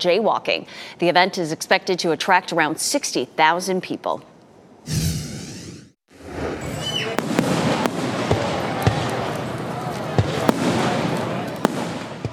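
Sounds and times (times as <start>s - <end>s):
speech: 0.0s - 5.1s
whistling rocket streaking up: 4.9s - 6.0s
fireworks booming and crackling: 7.2s - 9.6s, 10.2s - 12.3s.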